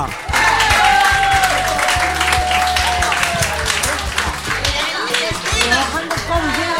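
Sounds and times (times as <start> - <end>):
audience applause: 0.1 - 6.7
whistling and cheering from crowd: 0.3 - 3.8.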